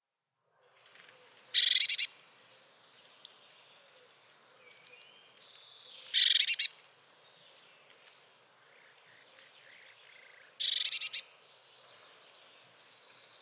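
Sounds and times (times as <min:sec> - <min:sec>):
Eurasian blue tit giving harsh buzzy calls: 0:00.8 - 0:02.2, 0:06.1 - 0:06.8, 0:10.6 - 0:11.3.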